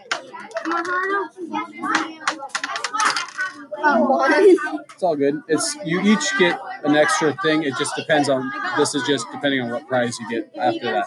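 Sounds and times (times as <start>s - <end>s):
children chattering during a dice game: 0.0s - 11.0s
dice clattering on a tabletop: 0.1s - 1.0s, 1.9s - 3.6s
speech: 0.7s - 2.7s, 3.6s - 11.0s.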